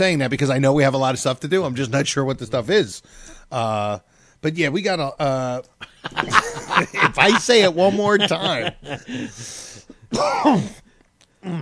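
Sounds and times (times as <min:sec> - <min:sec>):
speech: 0:00.0 - 0:10.8, 0:11.4 - 0:11.6
laughter: 0:05.8 - 0:09.5
person coughing and clearing throat with something caught in the throat: 0:09.0 - 0:10.9.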